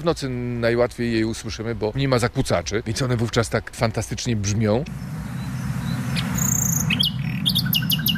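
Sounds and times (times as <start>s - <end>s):
speech: 0.0s - 5.3s
low steady rumble: 4.5s - 8.1s
nightingale singing: 4.9s - 8.1s.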